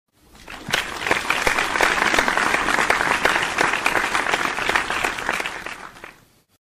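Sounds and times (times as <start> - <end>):
stadium crowd applause: 0.4 - 6.2.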